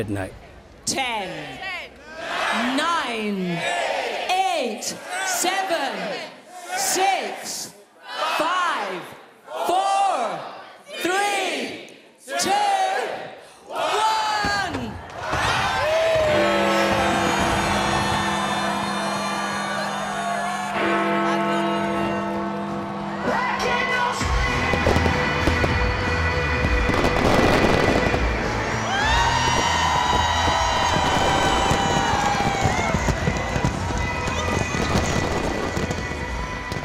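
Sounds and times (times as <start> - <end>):
speech: 0.0 - 1.7, 2.6 - 3.9, 4.6 - 7.8
crowd noise at a midnight countdown: 0.0 - 36.8
fireworks crackling bursts: 24.5 - 36.8
fireworks rockets whizzing into the night sky: 26.7 - 36.8.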